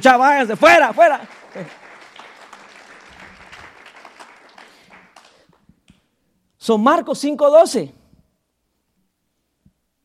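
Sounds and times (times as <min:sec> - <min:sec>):
speech: 0:00.0 - 0:01.8, 0:06.6 - 0:08.0
crowd giving loud applause: 0:00.0 - 0:05.6.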